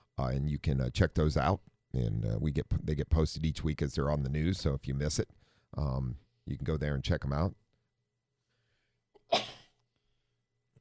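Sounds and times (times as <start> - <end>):
speech: 0.2 - 7.6
person sneezing: 9.3 - 9.8.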